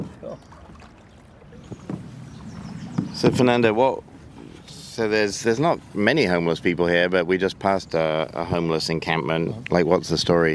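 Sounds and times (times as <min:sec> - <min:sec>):
soft splashes: 0:00.0 - 0:05.0
small boat moving through calm canal water in Los Angeles: 0:00.0 - 0:10.5
speech: 0:03.2 - 0:04.1, 0:05.0 - 0:10.5.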